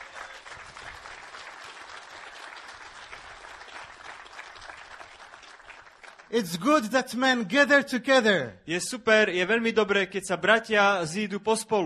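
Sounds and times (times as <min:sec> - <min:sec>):
large crowd applauding: 0:00.0 - 0:06.7
speech: 0:06.3 - 0:11.8.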